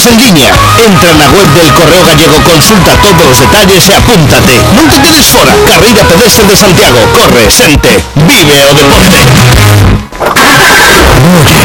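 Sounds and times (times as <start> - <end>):
speech: 0.0 - 9.9, 10.6 - 11.6
car engine running loudly with a rough rev: 9.1 - 11.6.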